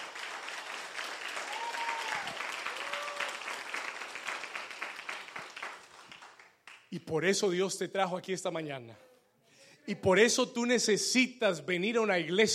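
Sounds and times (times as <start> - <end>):
audience applause: 0.0 - 6.8
faint cheers: 1.4 - 3.7
speech: 7.0 - 9.1, 9.9 - 12.5.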